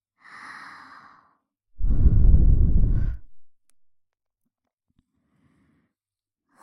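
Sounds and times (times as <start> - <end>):
soft cool breath blowing across the microphone into the ear: 1.8 - 3.4.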